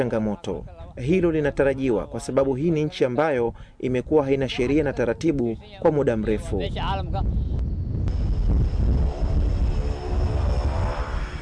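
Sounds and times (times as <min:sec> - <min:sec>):
speech: 0:00.0 - 0:07.5
wind buffeting: 0:00.0 - 0:11.4
commercial airliner arriving at Kismayo airport in Somalia: 0:07.2 - 0:11.4.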